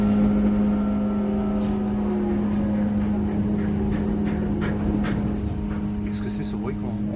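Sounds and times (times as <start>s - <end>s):
aircraft carrier catapult shuttle rumbling overhead: 0.0s - 7.1s
brief higher mechanical clanks: 2.4s - 6.4s.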